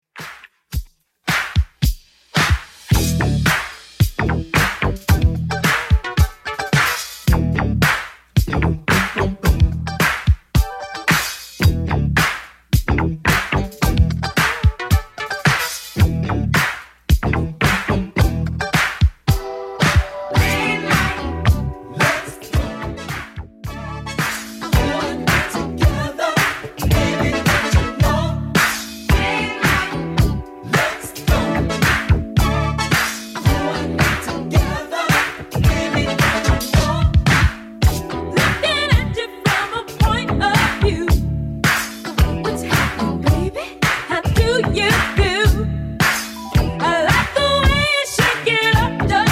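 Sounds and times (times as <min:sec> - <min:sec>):
80s-style drum beat: 0:00.2 - 0:49.3.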